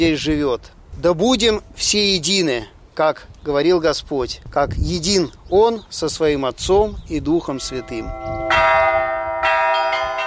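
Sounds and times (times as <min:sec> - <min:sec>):
speech: 0:00.0 - 0:08.8
church bells ringing in a resonant peal: 0:07.5 - 0:10.2.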